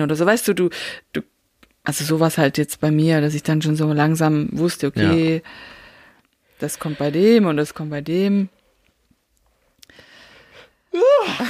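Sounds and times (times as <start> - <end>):
speech: 0.0 - 5.8, 6.6 - 8.6, 10.9 - 11.4
faint breath: 5.4 - 7.2, 9.9 - 10.9.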